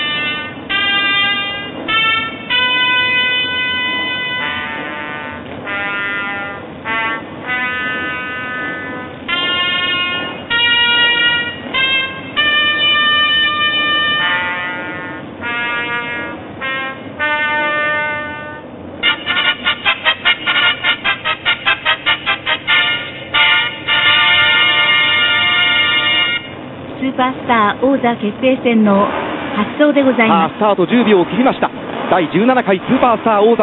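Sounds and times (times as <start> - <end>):
brassy race start fanfare over a stadium loudspeaker: 0.0 - 26.6
speech: 28.0 - 33.6.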